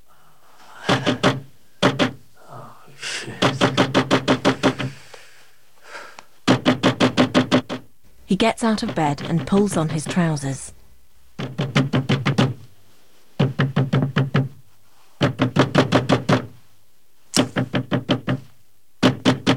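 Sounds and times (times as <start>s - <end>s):
loud knocking on a door at night: 0.8s - 2.2s, 3.4s - 5.0s, 6.4s - 7.9s, 8.6s - 10.2s, 11.4s - 12.7s, 13.4s - 14.6s, 15.2s - 16.6s, 17.4s - 19.5s
man narrating: 2.8s - 3.8s
speech: 8.3s - 10.7s.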